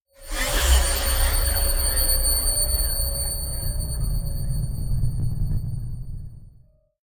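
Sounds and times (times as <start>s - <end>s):
monstrous drone feedback logo: 0.2s - 6.7s.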